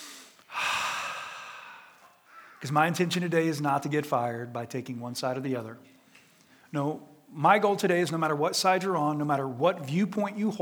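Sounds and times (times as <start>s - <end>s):
deep breath: 0.0s - 2.6s, 5.9s - 6.7s
speech: 2.6s - 6.0s, 6.7s - 10.6s.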